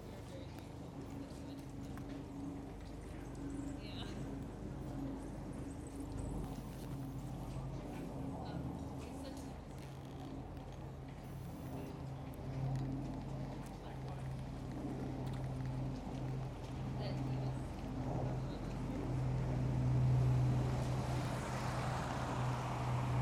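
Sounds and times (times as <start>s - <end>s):
drone of a plane flying overhead: 0.0s - 23.2s
car passing on a college campus: 19.2s - 23.2s.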